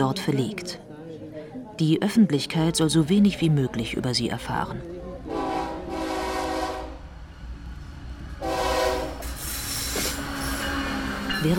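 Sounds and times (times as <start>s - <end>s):
speech: 0.0s - 0.9s, 1.8s - 4.9s
Central American freight train with wagons rumbling: 2.8s - 11.5s
Central American freight train horn blasts: 5.3s - 7.0s, 8.4s - 9.3s.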